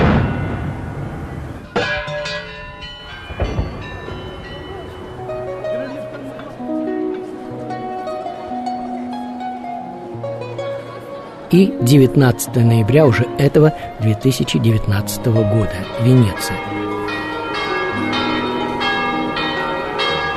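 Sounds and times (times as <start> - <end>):
cannon shots from a fortress bastion: 0.0 - 2.3
tonal bell-like musical sounds: 1.7 - 10.7, 11.5 - 20.3
speech: 11.5 - 16.8.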